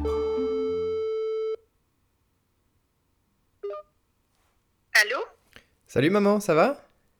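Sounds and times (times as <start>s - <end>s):
jumble of electronic telephone tones while placing a call: 0.2s - 1.6s, 3.6s - 3.9s
telephone ringing tone while placing a call: 0.2s - 1.6s, 3.6s - 3.8s
short electronic blip: 3.6s - 3.8s
speech: 6.0s - 6.8s.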